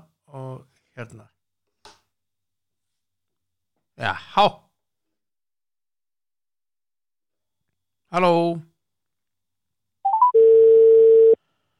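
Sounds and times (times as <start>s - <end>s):
speech: 0.3s - 1.4s, 4.0s - 4.6s, 8.1s - 8.7s
telephone ringing tone while waiting for a call to be answered: 10.1s - 11.4s.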